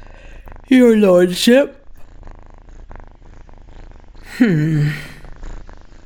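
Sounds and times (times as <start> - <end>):
cat purring: 0.0 - 6.0
speech: 0.7 - 1.8, 4.4 - 5.1
short bright downward sliding vocal tone: 4.3 - 5.2.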